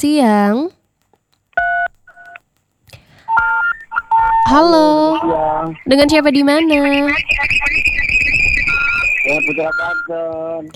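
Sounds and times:
speech: 0:00.0 - 0:00.8, 0:04.5 - 0:08.2, 0:09.2 - 0:10.7
crackly telephone line noise: 0:00.5 - 0:10.7
telephone keypad tones as an incoming call connects: 0:01.6 - 0:02.4, 0:03.2 - 0:10.7.

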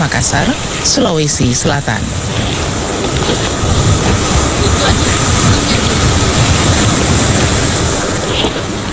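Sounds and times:
ocean surf washing onto a beach: 0:00.0 - 0:08.9
speech: 0:00.1 - 0:03.8.

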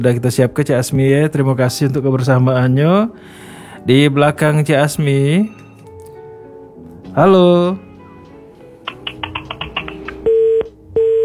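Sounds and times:
speech: 0:00.0 - 0:05.6, 0:07.2 - 0:07.9
telephone tone blips after a dropped call: 0:10.2 - 0:11.2.

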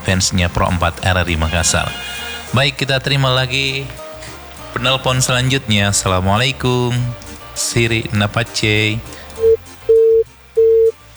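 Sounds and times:
speech: 0:00.1 - 0:04.0, 0:04.7 - 0:09.2
telephone disconnect tone beeps on a telephone line: 0:09.4 - 0:11.0.

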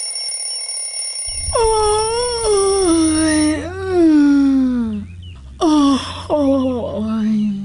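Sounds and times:
faint low hum: 0:01.3 - 0:07.6
person yawning: 0:01.4 - 0:05.0.

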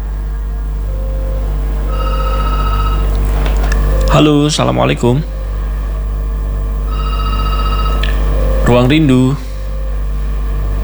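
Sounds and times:
constant low hum: 0:00.0 - 0:10.8
ringing tone of an outgoing WhatsApp call: 0:00.8 - 0:10.8
speech: 0:04.1 - 0:05.3, 0:08.7 - 0:09.5.

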